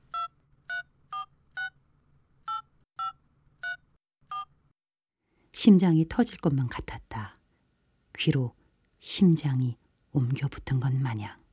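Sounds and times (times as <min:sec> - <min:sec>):
electronic phone keypad tones: 0:00.0 - 0:01.8, 0:02.5 - 0:04.5
speech: 0:05.6 - 0:07.4, 0:08.2 - 0:11.4.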